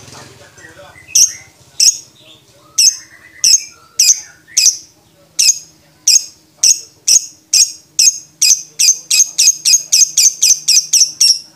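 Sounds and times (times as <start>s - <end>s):
lovebird giving sharp shrill squeaks: 2.7s - 11.5s.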